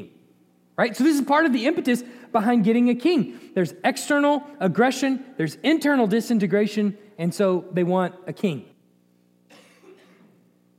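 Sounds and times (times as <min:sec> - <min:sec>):
faint steady hum: 0:00.0 - 0:10.7
speech: 0:00.8 - 0:08.7
person coughing: 0:09.5 - 0:10.4.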